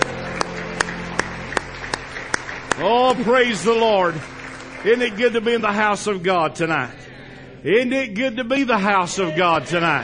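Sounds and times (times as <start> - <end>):
church congregation applause: 0.0 - 6.2
speech: 2.8 - 7.0, 7.6 - 10.0.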